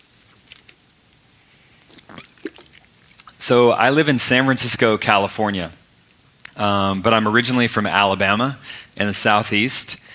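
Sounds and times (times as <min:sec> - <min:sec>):
faint mouth clicks: 0:01.8 - 0:03.4
person slurping and swallowing water: 0:01.8 - 0:03.4
speech: 0:03.5 - 0:05.8, 0:06.6 - 0:10.1.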